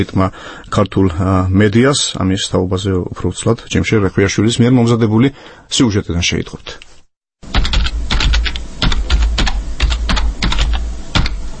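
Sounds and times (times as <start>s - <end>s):
speech: 0.0s - 6.8s
computer keyboard typing a website address: 7.5s - 11.4s.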